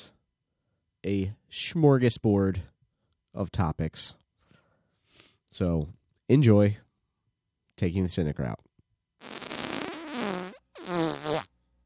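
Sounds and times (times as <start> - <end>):
speech: 1.0 - 2.7, 3.4 - 4.2, 5.5 - 6.8, 7.8 - 9.3
juicy wet fart: 9.2 - 11.5.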